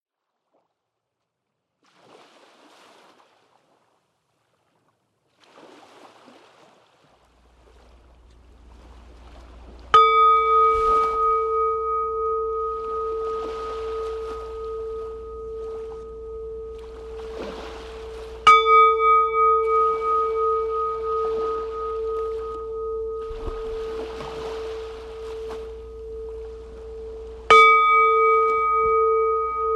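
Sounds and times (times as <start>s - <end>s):
singing bowls: 9.8s - 29.7s.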